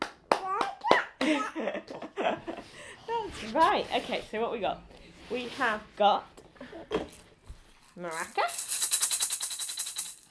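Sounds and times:
small child clapping hands: 0.0 - 1.4
speech: 3.4 - 7.1, 8.0 - 8.6.

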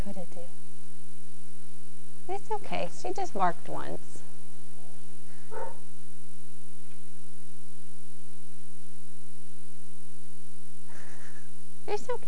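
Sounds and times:
steady electrical hum: 0.0 - 12.2
speech: 0.1 - 0.7, 2.3 - 4.3, 5.5 - 5.8, 11.9 - 12.2
dog bark: 5.5 - 5.9.

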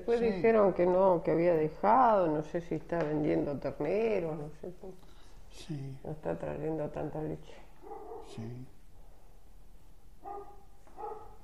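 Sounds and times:
speech: 0.0 - 7.6, 8.2 - 8.7
low steady hum: 0.0 - 11.4
dog barking at arriving visitors on a dairy farm: 7.8 - 8.4, 10.2 - 11.4.

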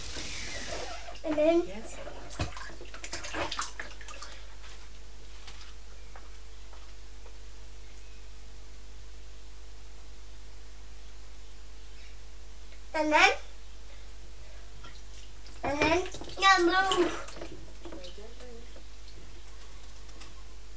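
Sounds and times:
soft steady hiss of bath water: 0.0 - 1.2
water splashing in a bathtub during a bath: 0.0 - 4.9, 14.8 - 20.4
speech: 1.3 - 2.1, 13.0 - 13.4.

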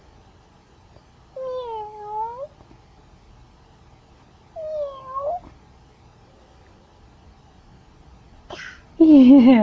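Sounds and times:
quiet hiss: 0.0 - 9.6
cat meowing: 1.4 - 2.5, 4.6 - 5.5
speech: 9.3 - 9.6.

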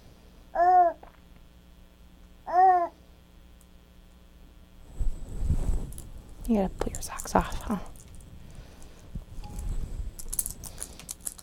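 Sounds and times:
soft rustling: 4.8 - 11.0
speech: 6.5 - 7.9
keys clinking and rattling as they are handled and shaken: 9.4 - 11.4.

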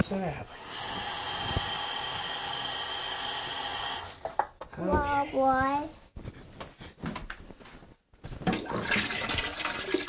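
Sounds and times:
speech: 0.1 - 1.1, 4.8 - 6.0
toilet flushing: 0.5 - 4.2, 8.5 - 10.0.

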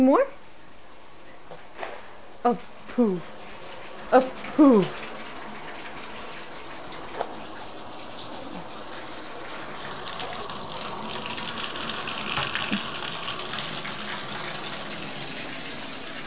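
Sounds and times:
speech: 0.0 - 0.4, 2.4 - 3.4, 4.1 - 5.1
tap water running into a bathtub: 4.4 - 16.2.

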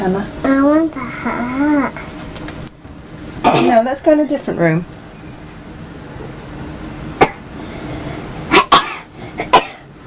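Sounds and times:
speech: 0.0 - 2.1, 3.6 - 5.0
girl coughing: 3.4 - 3.8, 7.2 - 7.5, 8.5 - 9.9.

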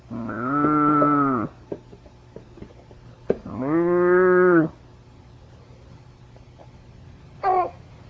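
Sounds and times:
cow mooing: 0.1 - 1.5, 3.5 - 4.7.

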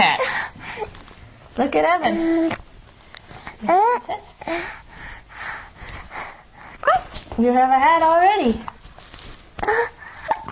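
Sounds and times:
speech: 1.6 - 2.6, 3.6 - 4.8, 7.4 - 8.7, 9.6 - 10.0
young child hiccuping: 9.6 - 10.5.

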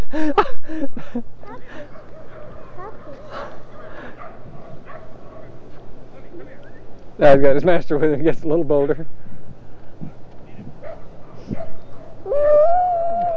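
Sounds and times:
speech: 0.1 - 0.4, 7.2 - 9.2
dog yipping and barking: 1.9 - 5.9, 10.8 - 12.1
dog whimpering and whining: 12.3 - 13.3.

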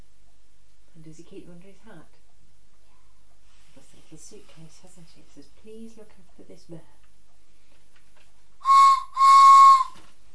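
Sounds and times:
speech: 1.0 - 2.2, 3.8 - 7.0
whistle blasts during a children's game of playing signalman: 8.6 - 10.0.

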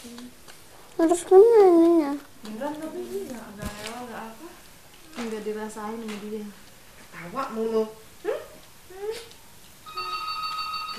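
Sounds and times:
faint room sounds: 0.0 - 10.9
speech: 1.0 - 4.6, 5.2 - 8.0
telephone ringing with a steady electronic ringtone: 9.8 - 10.9.

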